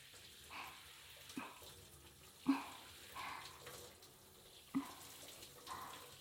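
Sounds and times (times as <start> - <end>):
shower water running: 0.0 - 6.1.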